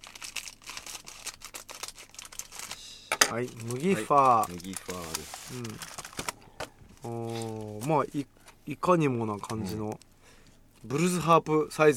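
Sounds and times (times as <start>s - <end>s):
plastic wafer snack wrapper being torn open: 0.0s - 8.6s
speech: 3.3s - 6.0s, 7.0s - 10.1s, 10.8s - 11.9s.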